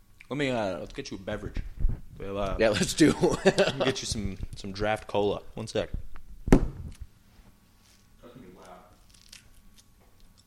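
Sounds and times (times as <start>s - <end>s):
speech: 0.3s - 6.1s
laughter: 2.7s - 4.2s
tearing bite into something tough: 9.0s - 10.4s.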